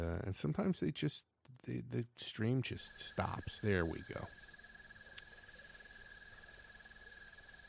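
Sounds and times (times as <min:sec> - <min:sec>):
speech: 0:00.0 - 0:04.5
crickets chirping: 0:02.2 - 0:07.6.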